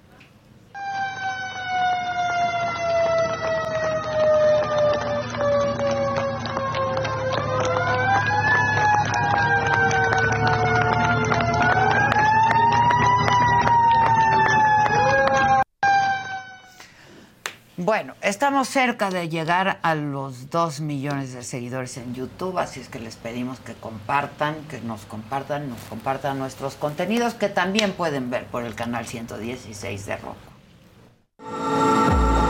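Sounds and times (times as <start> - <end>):
fire truck siren wailing: 0.8 - 16.8, 31.4 - 32.4
speech: 17.9 - 30.4.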